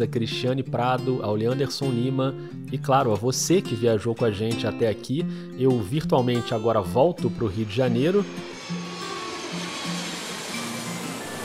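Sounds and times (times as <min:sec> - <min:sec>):
speech: 0:00.0 - 0:08.6
airplane engine roar: 0:07.4 - 0:11.4.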